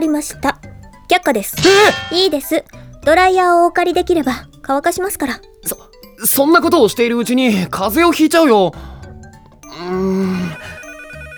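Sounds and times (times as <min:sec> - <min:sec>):
speech: 0:00.0 - 0:08.9, 0:09.7 - 0:10.6
steady music: 0:00.0 - 0:11.3
telephone ringing with a melodic tonal ring: 0:10.2 - 0:11.3.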